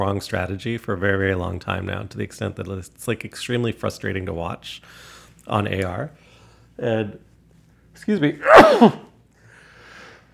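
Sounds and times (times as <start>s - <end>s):
speech: 0.0s - 6.2s, 6.8s - 7.3s, 8.0s - 9.1s
sneeze: 8.4s - 9.1s.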